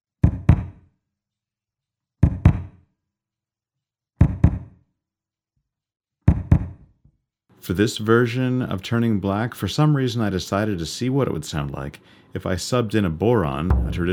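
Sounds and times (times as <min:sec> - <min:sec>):
kick drum thumps played in an apartment: 0:00.2 - 0:00.8, 0:02.2 - 0:02.8, 0:04.2 - 0:04.8, 0:06.3 - 0:06.8, 0:13.7 - 0:14.1
speech: 0:07.6 - 0:14.1.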